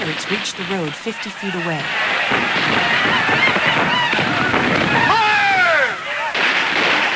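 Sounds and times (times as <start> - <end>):
speech: 0.2 - 3.5
rifle fire from a trench during a battle: 2.0 - 5.4, 6.3 - 7.1.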